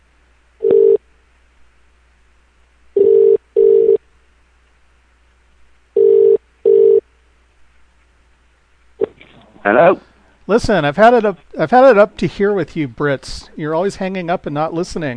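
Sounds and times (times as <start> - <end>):
ringback tone of an outgoing phone call: 0.6 - 1.0, 3.0 - 4.0, 6.0 - 7.0
speech: 9.6 - 15.1.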